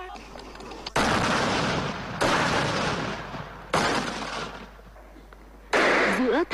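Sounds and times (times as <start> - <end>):
army gunshots at targets on a training range in central Vietnam: 1.0 - 4.8, 5.7 - 6.4.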